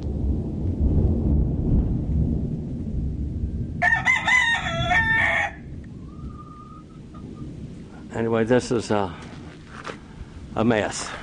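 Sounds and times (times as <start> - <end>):
steady low rumble: 0.0 - 10.6
drawn-out rooster crow: 3.8 - 6.8
speech: 8.2 - 9.3, 10.6 - 11.2.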